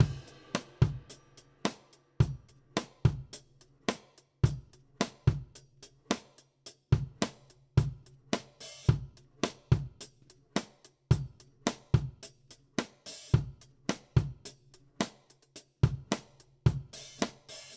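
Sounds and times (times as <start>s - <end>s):
country drum beat for a verse: 0.0s - 6.4s, 7.0s - 17.7s.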